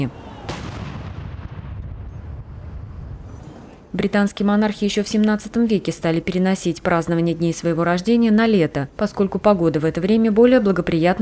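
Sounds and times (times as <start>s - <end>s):
speech: 0.0s - 0.2s, 3.9s - 11.1s
ceremonial gun salute cannon fire from World War I-era field guns in Green Park: 0.4s - 3.3s.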